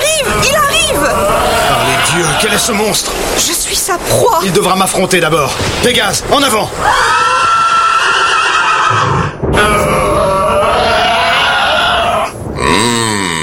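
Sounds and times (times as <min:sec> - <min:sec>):
horse neighing with shrill whinnies: 0:00.3 - 0:03.0, 0:06.8 - 0:13.4
speech: 0:02.2 - 0:07.3.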